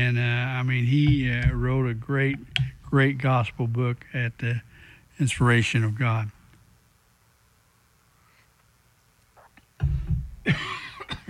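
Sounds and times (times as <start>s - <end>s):
speech: 0.0s - 6.4s, 9.8s - 11.2s
person coughing with throat rasp: 10.4s - 11.2s.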